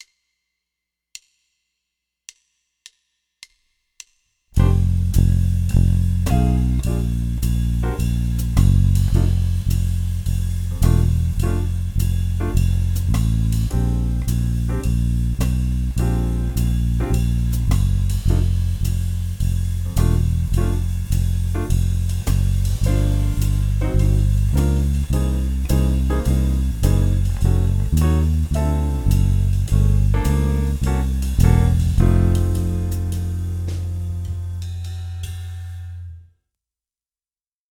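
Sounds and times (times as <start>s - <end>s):
improvised walking bass line: 4.6s - 34.7s.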